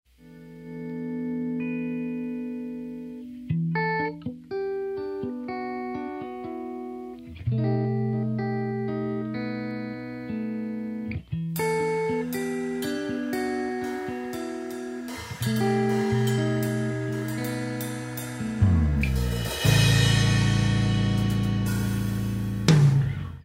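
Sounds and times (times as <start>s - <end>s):
guitar: 0.1s - 23.4s
drums: 11.5s - 23.4s.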